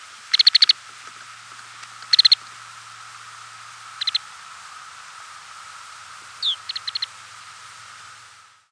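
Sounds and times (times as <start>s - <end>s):
Lapland longspur rattling calls: 0.0s - 2.6s, 3.9s - 4.4s, 6.4s - 7.2s.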